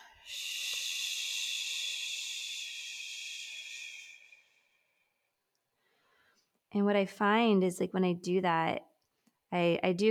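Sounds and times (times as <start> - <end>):
long breath out making a shushing hiss: 0.0 - 5.0
speech: 6.7 - 8.9, 9.5 - 10.1.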